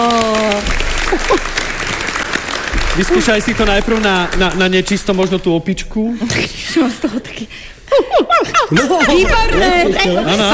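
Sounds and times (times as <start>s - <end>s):
audience applause during a timed word-guessing game show: 0.0s - 5.4s
laughter: 1.0s - 1.6s, 7.9s - 10.5s
speech: 1.2s - 1.6s, 3.0s - 10.5s.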